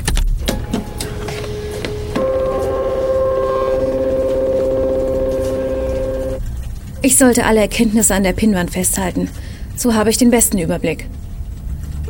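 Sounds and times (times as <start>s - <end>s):
printer clicks and mechanical knocks: 0.4s - 6.4s
speech: 7.0s - 11.2s.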